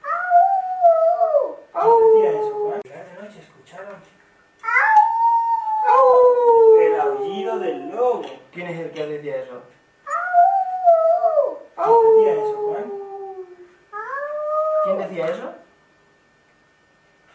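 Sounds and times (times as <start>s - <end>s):
wolf howling at night: 0.0s - 2.8s, 4.6s - 8.2s, 10.1s - 15.1s.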